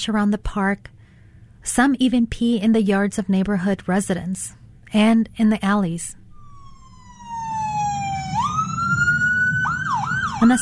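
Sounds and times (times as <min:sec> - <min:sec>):
speech: 0:00.0 - 0:01.0, 0:01.6 - 0:06.2, 0:10.4 - 0:10.6
steady rumble of street traffic: 0:06.2 - 0:10.6
ambulance siren wailing: 0:06.3 - 0:10.6.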